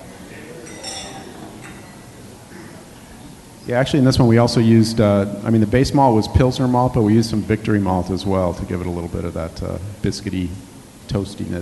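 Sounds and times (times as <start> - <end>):
faint voices: 0.0 - 11.6
low room noise: 0.0 - 11.6
beer glasses clinking in a toast: 0.5 - 2.3
speech: 3.7 - 11.6.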